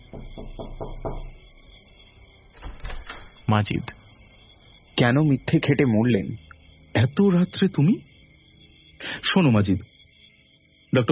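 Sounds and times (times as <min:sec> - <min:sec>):
knocking on a hotel room door: 0:00.0 - 0:01.4
steady tonal background: 0:00.0 - 0:11.0
speech: 0:03.5 - 0:04.0, 0:05.0 - 0:06.4, 0:07.0 - 0:08.1, 0:09.0 - 0:09.9, 0:10.9 - 0:11.1.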